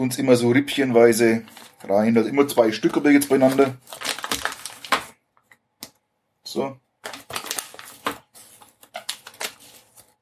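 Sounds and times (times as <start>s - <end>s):
speech: 0.0s - 4.1s, 6.5s - 7.2s
100-gram package tearing open: 3.3s - 5.1s, 7.0s - 8.2s, 8.8s - 10.0s.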